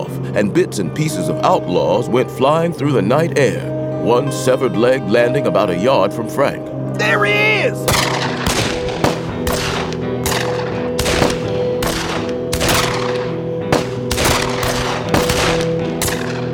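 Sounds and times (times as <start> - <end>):
speech: 0.4 - 8.2
heavy gunfire: 7.9 - 16.5.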